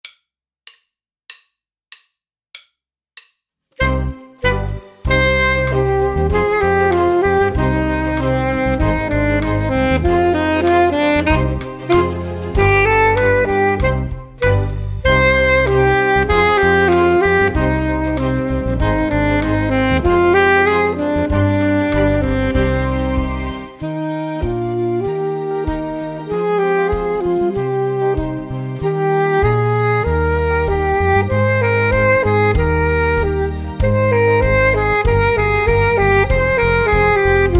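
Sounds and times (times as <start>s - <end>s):
saxophone playing a gavotte: 3.8s - 37.5s.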